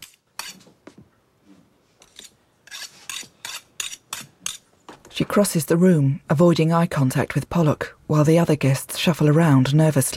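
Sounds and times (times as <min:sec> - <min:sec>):
knife being sharpened: 0:00.0 - 0:00.6, 0:02.1 - 0:04.6
speech: 0:05.2 - 0:10.1.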